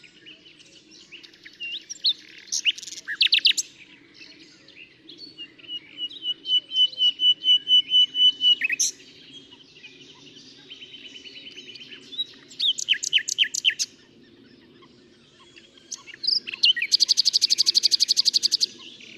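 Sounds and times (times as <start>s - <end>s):
common nightingale Luscinia megarhynchos singing: 0.0s - 19.1s.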